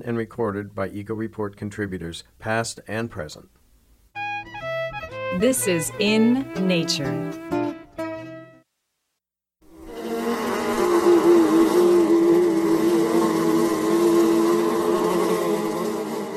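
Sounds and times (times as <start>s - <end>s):
speech: 0.0s - 3.6s, 5.3s - 7.6s
swarm of yellow jacket wasps droning: 5.4s - 7.0s, 9.7s - 16.3s.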